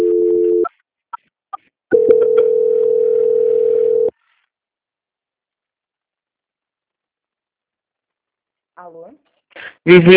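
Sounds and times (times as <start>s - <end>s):
telephone call transfer tones: 1.9s - 4.1s
speech: 8.9s - 10.1s.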